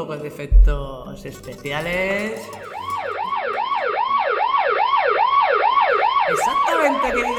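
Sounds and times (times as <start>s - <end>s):
speech: 0.0s - 3.1s, 6.3s - 7.3s
Guardia Civil police car siren wailing: 2.4s - 7.3s.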